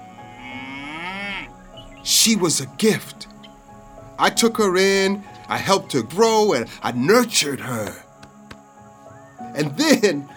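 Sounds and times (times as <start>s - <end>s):
cow mooing: 0.0s - 2.1s
speech: 2.1s - 3.3s, 4.2s - 8.0s, 9.6s - 10.3s.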